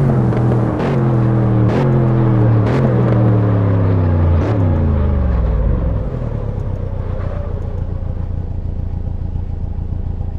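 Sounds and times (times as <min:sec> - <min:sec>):
Jaguar XFR car slowing down: 0:00.0 - 0:10.3.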